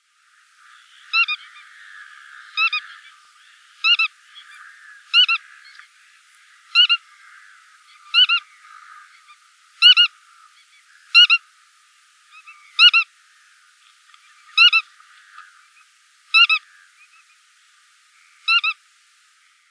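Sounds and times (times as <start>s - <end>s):
bar-tailed godwit Limosa lapponica calling: 0.6s - 11.4s, 12.3s - 13.1s, 14.4s - 15.6s, 16.3s - 17.2s, 18.5s - 18.8s.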